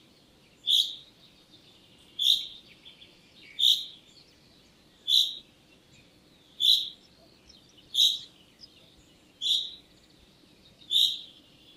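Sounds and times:
common chaffinch calling with single bright clipped notes: 0.0 - 11.7
quiet background hiss: 0.0 - 11.7.

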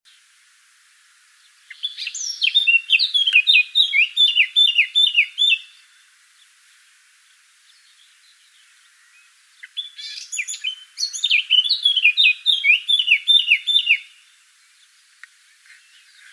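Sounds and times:
Eurasian blackcap Sylvia atricapilla song: 1.5 - 6.6, 7.6 - 16.3.

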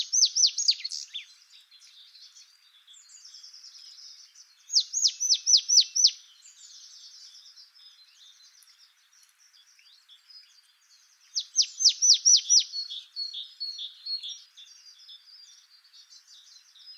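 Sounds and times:
marsh tit soft buzzy twittering: 0.0 - 1.3, 4.7 - 6.2, 11.3 - 14.8.

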